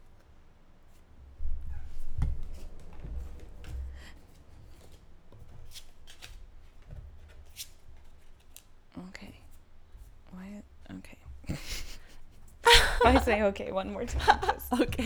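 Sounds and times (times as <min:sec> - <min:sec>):
small mini deck of cards being shuffled: 0:05.7 - 0:06.4
laughter: 0:11.5 - 0:15.0
speech: 0:13.0 - 0:15.0.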